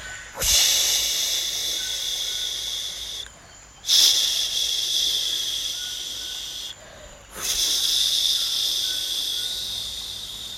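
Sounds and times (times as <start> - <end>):
voices imitating flowing river water with breathy shushing hisses: 0.0 - 10.5.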